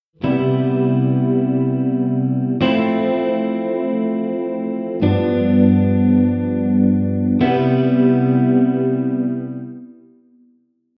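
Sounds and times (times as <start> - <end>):
chord cadence C7M F7M G7 C7M: 0.2 - 10.4.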